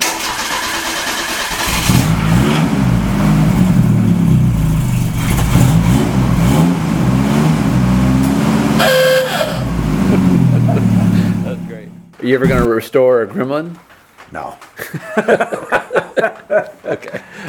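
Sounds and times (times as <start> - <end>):
car engine cranking over, catching and revving: 0.0 - 12.7
laughter: 10.0 - 11.8, 14.8 - 17.4
speech: 12.3 - 15.8.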